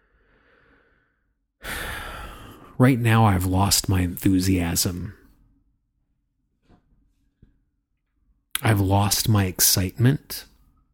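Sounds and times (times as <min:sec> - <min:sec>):
deep breath: 0:00.0 - 0:02.8
speech: 0:02.8 - 0:05.2, 0:08.7 - 0:10.5.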